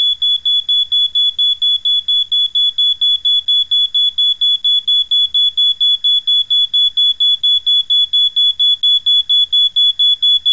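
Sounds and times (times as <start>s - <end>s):
smoke alarm: 0.0s - 10.5s.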